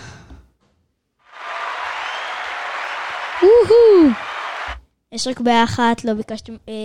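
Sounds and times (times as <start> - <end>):
group applauding: 1.2 - 4.8
rising-and-falling whoop or whistle: 1.4 - 4.8
speech: 3.4 - 4.2, 5.1 - 6.8.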